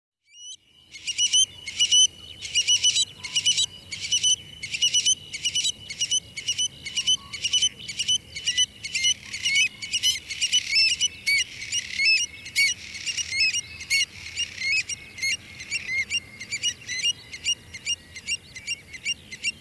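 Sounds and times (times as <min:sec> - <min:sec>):
stone curlew birdsong: 0:00.3 - 0:19.6.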